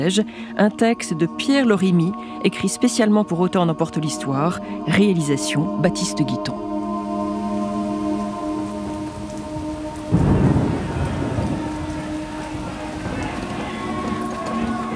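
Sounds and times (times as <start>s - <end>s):
speech: 0.0s - 6.7s
steady rain falling: 5.8s - 14.9s
loud low rumble of thunder: 7.4s - 14.9s.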